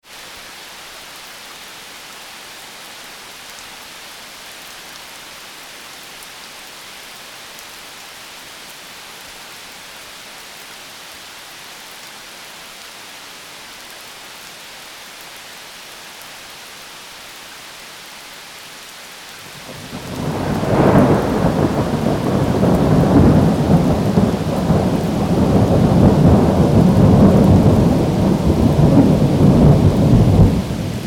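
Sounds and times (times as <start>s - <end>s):
rain in a thunderstorm: 0.0s - 31.0s
thunder in a thunderstorm: 19.6s - 31.0s.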